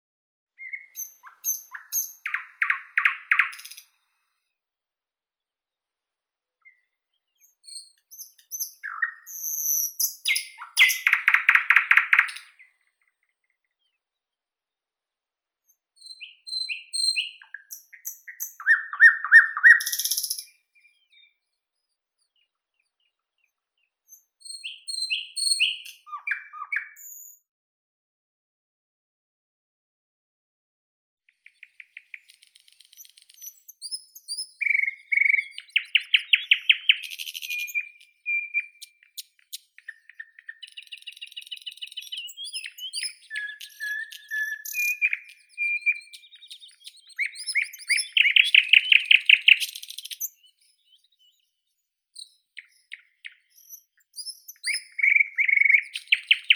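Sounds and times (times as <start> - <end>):
common nightingale Luscinia luscinia singing: 0.6 - 4.0, 6.6 - 12.8, 15.7 - 21.4, 24.1 - 27.4, 31.5 - 56.5.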